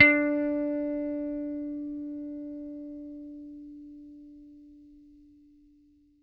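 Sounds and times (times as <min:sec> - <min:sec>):
bass playing D4 note: 0:00.0 - 0:02.7.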